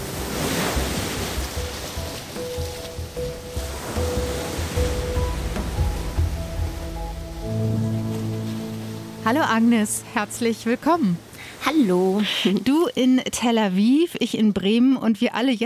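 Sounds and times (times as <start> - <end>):
gentle Dead Sea waves washing onto Kalia Beach in the West Bank: 0.0 - 13.2
speech: 9.3 - 15.6.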